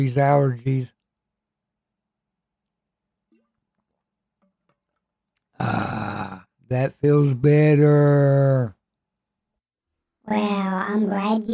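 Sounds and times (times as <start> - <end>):
speech: 0.0 - 1.0, 5.6 - 6.0, 6.7 - 8.8, 10.3 - 11.5
person gulping water for a dry throat: 5.4 - 6.6.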